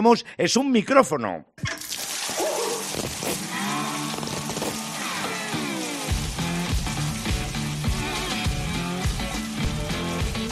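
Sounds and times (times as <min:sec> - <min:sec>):
speech: 0:00.0 - 0:01.9
shower water running: 0:01.8 - 0:10.4
person singing in the shower: 0:03.4 - 0:06.0.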